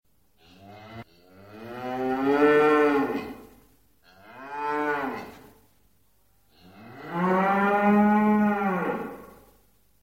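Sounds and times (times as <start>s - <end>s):
cow mooing: 0.6s - 3.4s, 4.1s - 5.3s, 6.7s - 9.4s.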